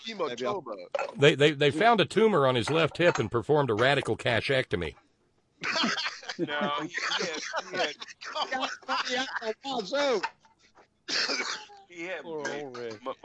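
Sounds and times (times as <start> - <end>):
speech: 0.0 - 5.0, 5.6 - 10.4, 11.1 - 13.2
person coughing and sputtering as if choking: 5.6 - 9.4, 11.1 - 11.7, 12.4 - 13.2
person laughing hard: 5.6 - 9.6.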